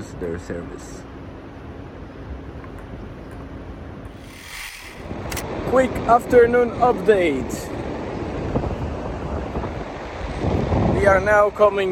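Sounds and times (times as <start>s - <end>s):
speech: 0.2s - 1.2s, 5.7s - 7.7s, 11.0s - 11.8s
strong wind at the beach buffeting the microphone: 3.8s - 11.8s.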